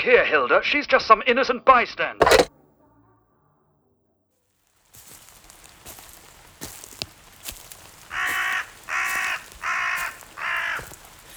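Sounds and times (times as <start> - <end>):
speech: 0.0 - 2.5
crow cawing: 5.4 - 11.3.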